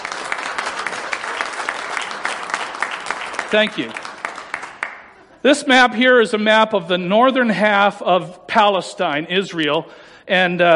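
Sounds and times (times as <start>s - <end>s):
audience applause in a room: 0.0s - 5.2s
speech: 3.5s - 4.0s, 5.4s - 10.7s.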